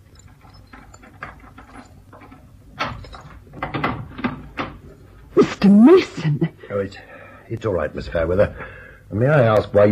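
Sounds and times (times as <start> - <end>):
skeleton keys scraping and clicking in a lock: 0.0 - 5.2
speech: 5.6 - 9.9.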